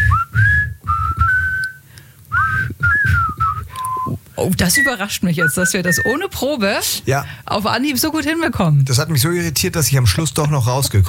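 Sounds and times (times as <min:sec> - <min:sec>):
two radio morning-show hosts whistling a tune together: 0:00.0 - 0:06.3
speech: 0:04.4 - 0:11.0.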